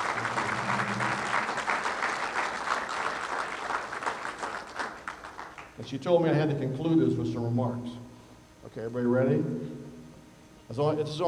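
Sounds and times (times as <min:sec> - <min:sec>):
sizable audience applauding the event's organizer: 0:00.0 - 0:05.8
speech: 0:05.9 - 0:08.0, 0:08.7 - 0:09.8, 0:10.7 - 0:11.2.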